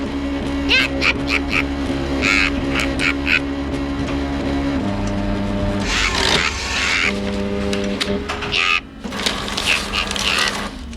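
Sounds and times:
fax machine in a camper van holding steady electronic tones: 0.0 - 10.9
laughter: 0.4 - 3.6, 5.8 - 7.3.

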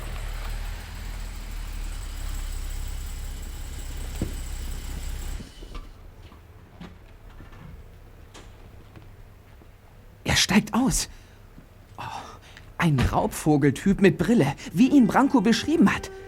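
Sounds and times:
light blue car engine idling: 0.0 - 6.2
speech: 10.6 - 11.2, 12.8 - 16.2.

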